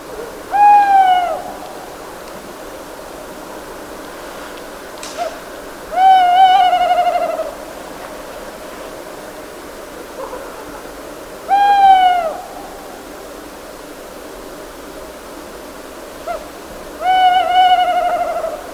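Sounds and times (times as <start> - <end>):
tawny owl hooting: 0.0 - 2.0, 5.0 - 7.7, 10.0 - 13.3, 16.2 - 18.7
quiet steady hiss: 0.0 - 18.7.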